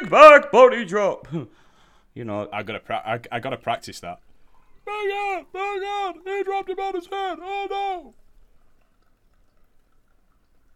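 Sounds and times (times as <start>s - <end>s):
speech: 0.1s - 1.6s, 2.2s - 4.2s, 4.9s - 8.2s
coffee pouring into a cup: 4.3s - 10.7s.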